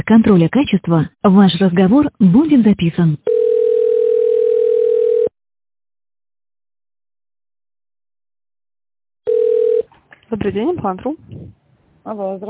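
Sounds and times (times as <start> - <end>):
speech: 0.1 - 3.4, 10.3 - 12.4
telephone tone while a call is being transferred: 3.2 - 5.4, 9.3 - 9.9.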